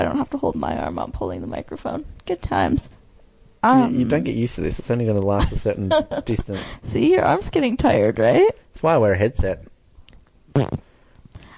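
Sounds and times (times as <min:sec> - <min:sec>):
speech: 0:00.0 - 0:03.0, 0:03.6 - 0:09.7, 0:10.6 - 0:10.8
short buzzy fart: 0:10.5 - 0:10.9.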